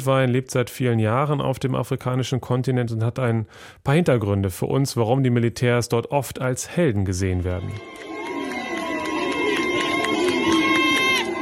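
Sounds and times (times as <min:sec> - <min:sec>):
speech: 0:00.0 - 0:08.2
crowd of several hundred people cheering and shouting in the streets: 0:07.5 - 0:11.3
shrill sustained tones above a crowd: 0:07.6 - 0:11.3.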